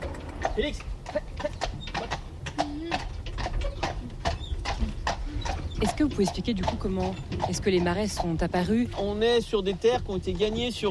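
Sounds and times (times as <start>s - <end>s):
Breton draft horse hooves clopping: 0.0s - 10.8s
Breton draft horse grunting: 0.3s - 9.2s
speech: 0.5s - 4.2s, 5.8s - 10.8s.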